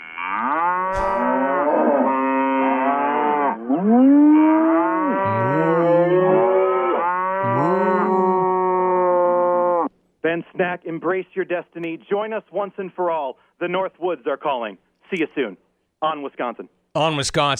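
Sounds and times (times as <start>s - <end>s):
chorus of cows mooing with long bellowing calls: 0.0s - 9.9s
speech: 10.6s - 17.5s.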